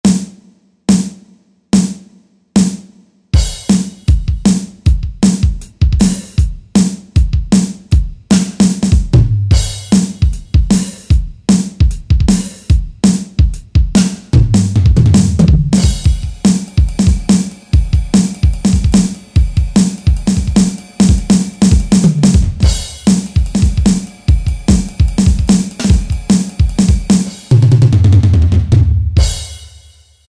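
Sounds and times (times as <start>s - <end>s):
rock drum kit on a Yamaha DJX keyboard: 0.0s - 30.2s.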